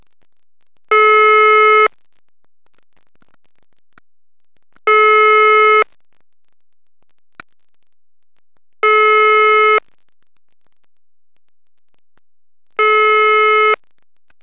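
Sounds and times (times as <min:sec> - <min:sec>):
Russian telephone ringing: 0:00.9 - 0:01.9, 0:04.9 - 0:05.8, 0:08.8 - 0:09.8, 0:12.8 - 0:13.8.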